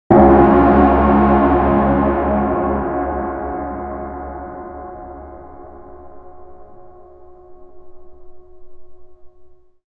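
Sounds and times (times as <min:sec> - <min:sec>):
ominous satanic gong: 0:00.1 - 0:09.7.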